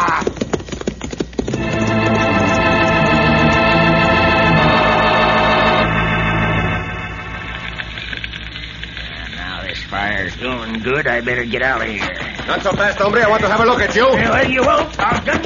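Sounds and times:
horse galloping at full speed: 0.0s - 4.8s, 10.5s - 15.4s
steady held tone: 1.6s - 9.1s
speech: 10.8s - 15.4s.

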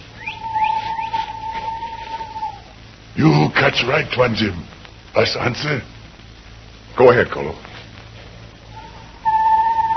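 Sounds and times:
steady high-pitched hum: 0.0s - 6.9s, 8.3s - 9.9s
bird calling with rising whistled chirps: 0.1s - 2.6s
speech: 3.2s - 5.9s, 7.0s - 7.7s.

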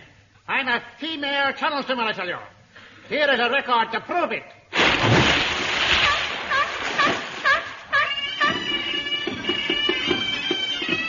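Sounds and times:
speech: 0.6s - 5.1s
water splashing: 4.8s - 7.8s
bagpipe drone and melody: 8.0s - 11.0s.

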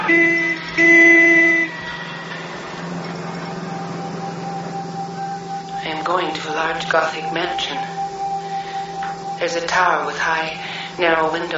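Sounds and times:
car horn honking while driving to the hospital: 0.0s - 5.7s
speech: 0.1s - 1.0s, 6.1s - 7.9s, 9.4s - 11.5s.

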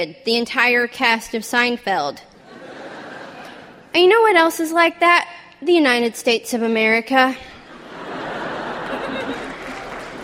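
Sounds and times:
speech: 0.0s - 2.3s, 3.9s - 7.5s
audience clapping: 8.4s - 10.2s
light laughter: 8.8s - 9.8s.

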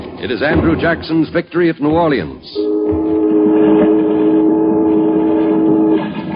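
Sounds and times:
speech: 0.2s - 3.0s
early steamboat low whistle blast: 2.5s - 6.3s.

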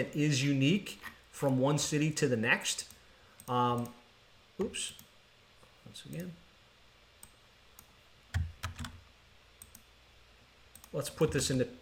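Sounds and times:
speech: 0.0s - 2.9s, 3.5s - 4.0s, 4.6s - 5.0s, 5.8s - 6.4s, 10.9s - 11.7s
computer keyboard typing: 8.3s - 9.0s.

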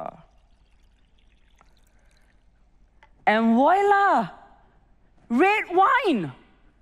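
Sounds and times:
water poured into a jar: 0.0s - 3.2s
speech: 3.3s - 4.4s, 5.3s - 6.4s.

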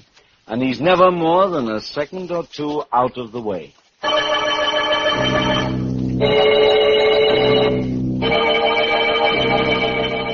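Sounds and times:
speech: 0.5s - 4.2s, 5.2s - 6.6s
bells ringing on the hour: 4.0s - 10.3s.

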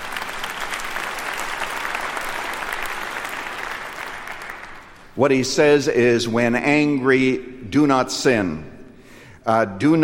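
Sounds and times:
audience applause at a sermon: 0.0s - 5.2s
speech: 5.2s - 8.7s, 9.5s - 10.0s.

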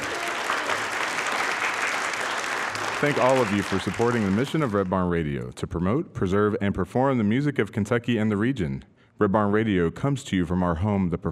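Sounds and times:
studio audience from England applauding in a performance hall in downtown Lexington Kentucky: 0.0s - 4.9s
speech: 3.0s - 11.3s.

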